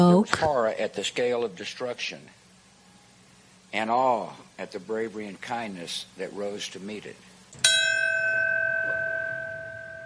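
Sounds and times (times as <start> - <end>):
speech: 0.0 - 2.4, 3.7 - 7.7
memorial bell tolling at a remembrance ceremony: 7.6 - 10.0.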